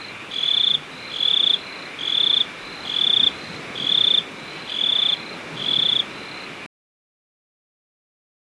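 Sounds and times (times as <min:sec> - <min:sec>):
cricket chirping: 0:00.0 - 0:06.7.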